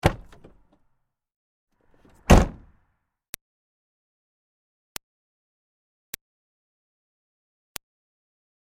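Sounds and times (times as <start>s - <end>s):
2005 Smart Fortwo car door opening and closing hard: 0.0s - 0.7s, 2.0s - 2.8s.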